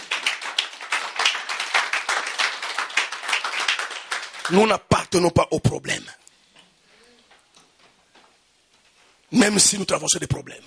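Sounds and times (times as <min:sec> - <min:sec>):
congregation applauding during a church worship service: 0:00.0 - 0:04.9
speech: 0:04.5 - 0:06.2, 0:09.3 - 0:10.6.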